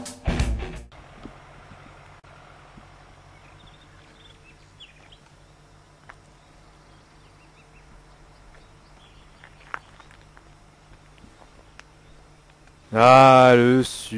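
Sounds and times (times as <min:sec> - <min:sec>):
quiet outdoor hum: 0:00.4 - 0:14.1
birds chirping: 0:00.9 - 0:14.1
speech: 0:13.0 - 0:14.1.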